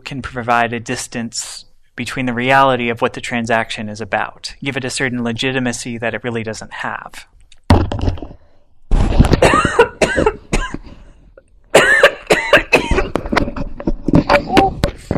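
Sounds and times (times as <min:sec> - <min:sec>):
speech: 0:00.1 - 0:07.4
microphone being jostled with thumps and rustling knocks: 0:07.6 - 0:10.9, 0:12.8 - 0:15.1
person coughing: 0:09.3 - 0:11.0, 0:11.7 - 0:13.2.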